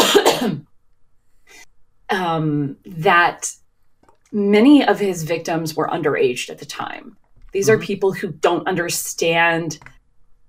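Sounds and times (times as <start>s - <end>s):
person clearing throat: 0.0s - 0.7s
person coughing: 0.0s - 0.7s
speech: 2.1s - 3.6s, 4.3s - 10.4s.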